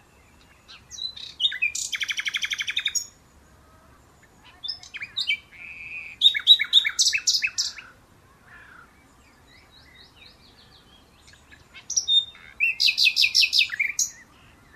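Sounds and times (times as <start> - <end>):
Common nightingale Luscinia megarhynchos singing: 0.0 - 8.0, 8.6 - 14.7.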